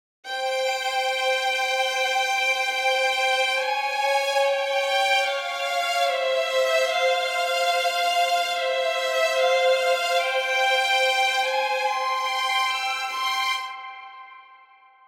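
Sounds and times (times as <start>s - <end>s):
strings playing: 0.3s - 14.5s.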